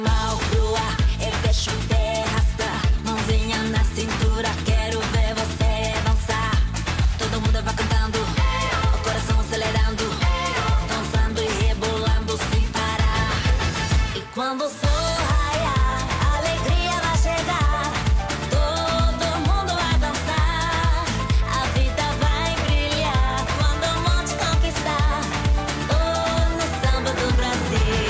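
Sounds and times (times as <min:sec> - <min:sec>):
samba music: 0:00.1 - 0:28.0.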